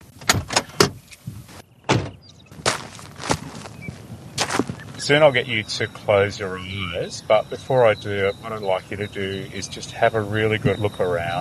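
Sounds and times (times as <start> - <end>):
car door opening and shutting at the Yurrabadalla Botanic Gardens in Australia: 1.8 - 2.2
brief scraping and rustling: 2.6 - 5.1
speech: 5.1 - 11.3.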